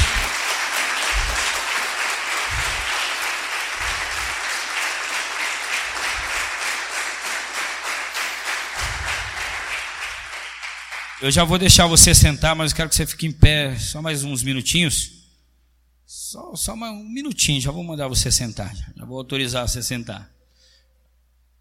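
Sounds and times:
crowd applauding: 0.0s - 11.9s
low thumps: 2.5s - 2.9s, 8.8s - 9.4s
speech: 11.2s - 15.2s, 16.3s - 20.4s.

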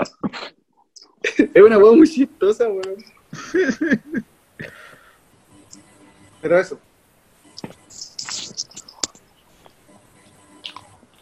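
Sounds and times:
speech: 1.6s - 4.8s, 6.4s - 6.9s
laughter: 3.3s - 4.3s
crunchy chewing of a cookie into the microphone: 10.6s - 11.2s.

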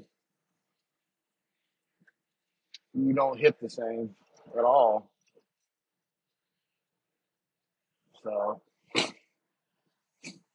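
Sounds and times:
speech: 3.0s - 5.1s, 8.2s - 9.1s
person coughing: 8.9s - 9.3s
person sneezing: 8.9s - 9.4s.

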